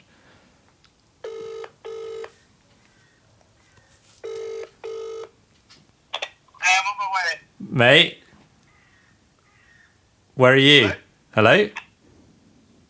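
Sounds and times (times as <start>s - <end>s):
phone line ringing with buzzy double-ring tones: 1.2s - 2.4s, 4.2s - 5.4s
speech: 6.9s - 8.2s, 10.4s - 11.8s.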